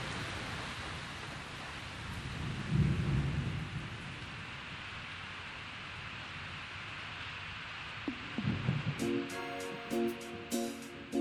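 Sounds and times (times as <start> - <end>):
heavy rain pouring: 0.0 - 11.1
low rolling thunder: 1.9 - 5.1, 8.1 - 10.5.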